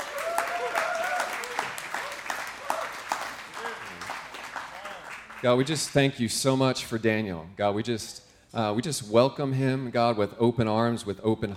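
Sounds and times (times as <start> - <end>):
audience at a worship service applauding: 0.0 - 6.1
speech: 5.4 - 11.5.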